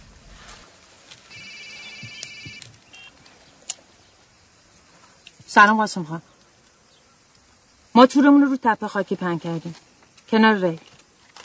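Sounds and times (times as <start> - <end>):
mobile phone ringtone: 1.3 - 2.6
speech: 5.5 - 6.3, 8.0 - 10.9.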